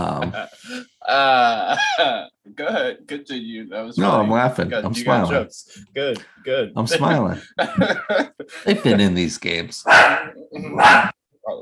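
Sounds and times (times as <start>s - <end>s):
laughter: 0.0s - 3.9s, 6.0s - 9.2s
speech: 0.2s - 2.3s, 3.1s - 11.5s
puppy barking: 9.9s - 11.2s.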